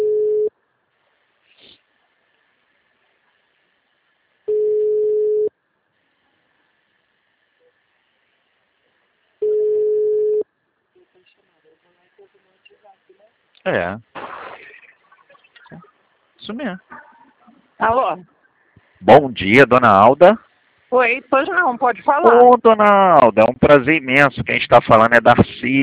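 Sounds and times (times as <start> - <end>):
telephone line tone while a call is placed: 0.0 - 0.5, 4.5 - 5.5, 9.4 - 10.4
speech: 13.7 - 14.1, 16.5 - 17.0, 17.8 - 18.3, 19.0 - 25.8.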